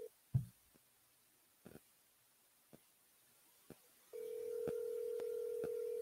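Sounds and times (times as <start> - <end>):
clicks from a phone dialing a cell phone number: 4.2 - 5.9.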